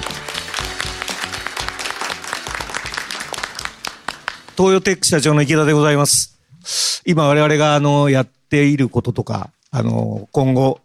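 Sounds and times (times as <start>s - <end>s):
audience applause at a corporate investor event in Osaka: 0.0s - 4.6s
speech: 4.6s - 10.8s.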